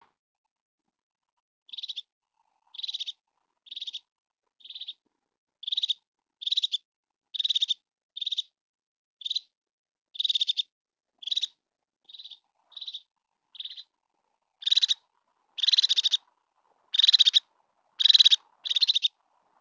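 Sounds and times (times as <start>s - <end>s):
crested tit buzzy trilled calls: 1.7s - 2.1s, 2.7s - 4.0s, 4.6s - 5.0s, 5.6s - 6.8s, 7.4s - 8.5s, 9.2s - 9.5s, 10.2s - 10.6s, 11.2s - 13.9s, 14.6s - 15.0s, 15.6s - 16.3s, 16.9s - 19.2s.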